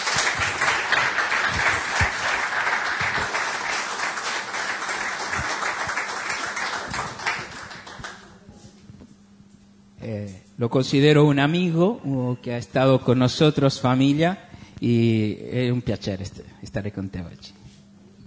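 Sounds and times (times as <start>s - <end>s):
audience applauding in church: 0.0s - 8.4s
speech: 10.6s - 17.6s.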